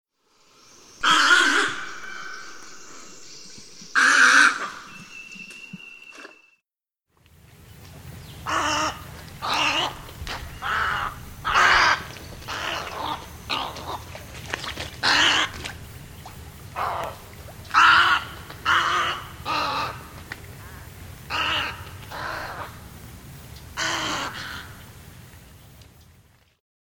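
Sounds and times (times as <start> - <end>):
Snowy egret: 1.0 - 3.3, 4.0 - 5.2, 8.4 - 22.9.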